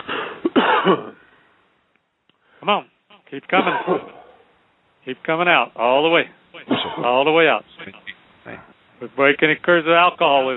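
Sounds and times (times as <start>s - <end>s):
person forcing harsh coughs: 0.2s - 1.2s, 3.6s - 4.4s, 6.7s - 7.1s
speech: 0.9s - 1.2s, 2.6s - 4.2s, 5.0s - 10.5s.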